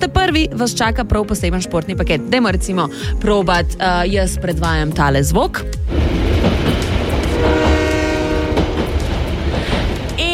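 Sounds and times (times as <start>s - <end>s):
speech: 0.0s - 6.0s
passing train rumble: 5.8s - 10.3s
rail clatter: 5.8s - 10.3s
sustained train horn blast: 7.1s - 9.1s.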